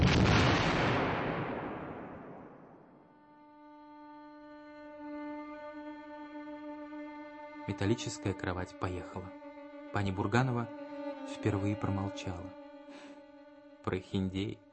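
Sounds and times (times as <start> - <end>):
hand grenade exploding: 0.0 - 3.1
speech: 7.7 - 13.1, 13.8 - 14.6.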